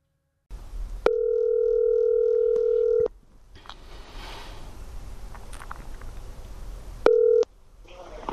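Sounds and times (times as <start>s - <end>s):
low hiss: 0.5s - 8.3s
telephone line electronic ringing tone: 1.1s - 3.1s, 7.0s - 7.5s.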